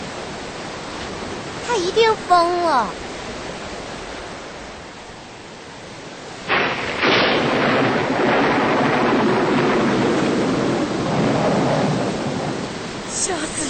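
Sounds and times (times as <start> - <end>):
heavy rain: 0.0 - 13.6
speech: 1.7 - 3.1
loud rumble of thunder: 6.4 - 13.0.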